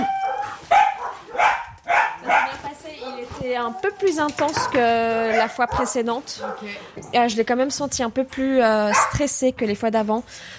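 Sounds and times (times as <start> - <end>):
dog barking with a whiny, yipping edge: 0.2 - 6.8, 8.9 - 9.3
speech: 3.4 - 10.5.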